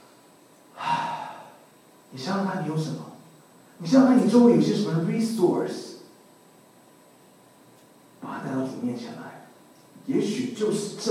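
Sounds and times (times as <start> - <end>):
deep breath drawn in: 0.8 - 1.7
speech: 2.1 - 3.1, 3.8 - 6.0, 8.6 - 9.3, 10.1 - 11.1.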